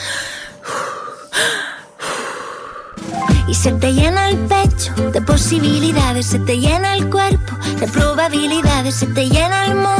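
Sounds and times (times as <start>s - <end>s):
deep breathing in and out: 0.0s - 3.5s
speech: 3.5s - 9.9s.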